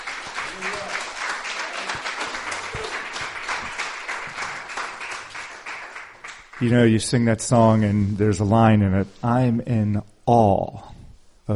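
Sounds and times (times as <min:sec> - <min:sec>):
large crowd clapping: 0:00.0 - 0:06.9
speech: 0:06.6 - 0:10.9.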